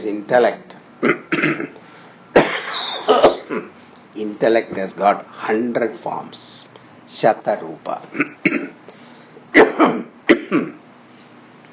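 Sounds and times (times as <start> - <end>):
speech: 0.0 - 1.8, 3.5 - 8.8
person clearing throat: 1.0 - 1.8, 2.4 - 3.8, 8.1 - 8.8, 9.6 - 10.8
person coughing: 1.0 - 3.8, 8.1 - 8.8, 9.5 - 10.8.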